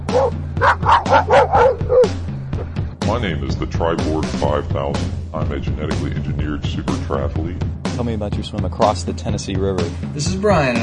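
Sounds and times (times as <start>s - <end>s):
big black dog barking in the road: 0.0s - 2.2s
speech: 3.2s - 10.8s.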